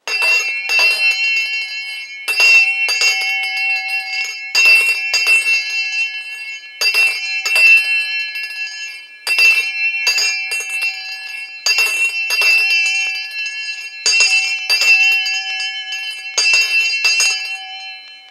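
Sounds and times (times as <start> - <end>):
old school bell ringing: 0.0 - 18.2.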